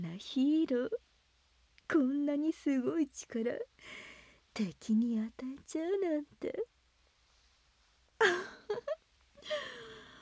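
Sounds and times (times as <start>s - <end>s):
speech: 0.2s - 1.0s, 1.9s - 6.7s, 8.2s - 9.8s
person crying with wailing sobs and whimpers: 8.2s - 10.0s.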